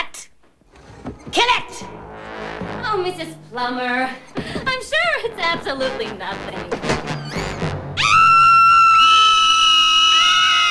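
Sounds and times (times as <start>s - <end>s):
speech: 2.9s - 6.9s
three people screaming in fright over a suspected rat: 7.2s - 10.6s.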